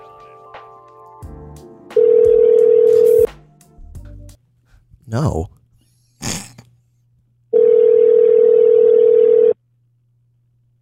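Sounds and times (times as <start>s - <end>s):
phone call ringing through a mixer speaker: 2.0s - 3.3s, 7.5s - 9.6s
speech: 5.1s - 5.6s.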